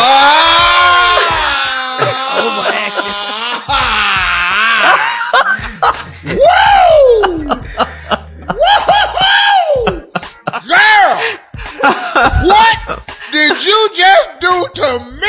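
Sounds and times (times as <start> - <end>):
drawn-out yell: 0.0 - 5.0, 6.3 - 7.6, 8.6 - 11.4, 12.3 - 15.2
loud raw primal scream: 0.0 - 5.2, 6.2 - 7.6, 8.6 - 11.5
giggling and laughter from several people: 0.7 - 14.1.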